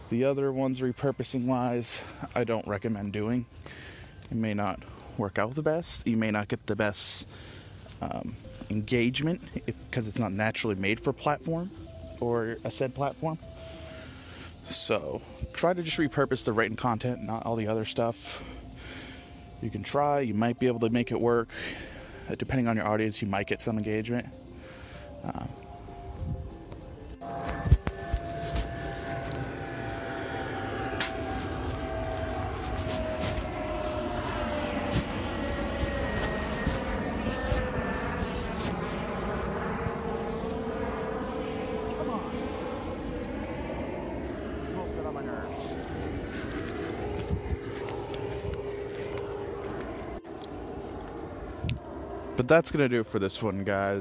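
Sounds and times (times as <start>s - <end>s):
airplane passing overhead with engine whine: 0.0s - 53.9s
speech: 0.1s - 13.8s, 14.7s - 18.6s, 19.6s - 24.4s, 25.3s - 25.6s, 52.5s - 53.9s.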